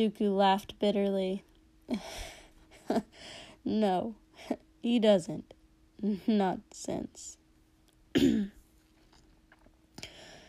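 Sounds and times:
speech: 0.0s - 7.4s, 8.2s - 8.6s
throat clearing: 8.2s - 8.6s.

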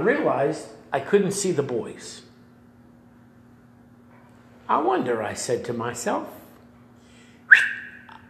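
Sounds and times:
speech: 0.0s - 2.3s, 4.7s - 6.4s
faint hum: 0.0s - 8.2s
sharp human whistle calling children in a zoo primate house: 7.5s - 8.2s.

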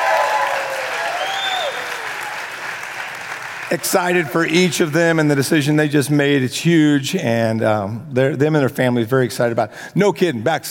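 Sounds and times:
crowd cheering and whooping: 0.0s - 2.7s
crowd applauding: 0.0s - 4.9s
speech: 3.7s - 10.6s.

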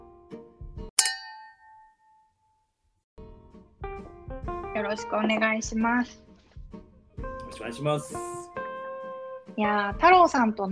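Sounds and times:
glasses of coffee soy milk and sparkling water with yuzu clinking in a toast: 1.0s - 2.2s
speech: 4.8s - 6.2s, 7.6s - 8.4s, 9.6s - 10.7s.

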